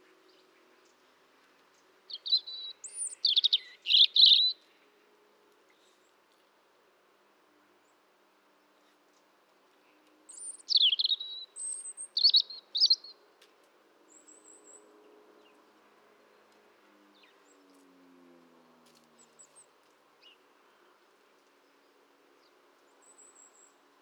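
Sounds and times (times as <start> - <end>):
European robin Erithacus rubecula singing: 2.1 - 4.6, 10.3 - 13.2.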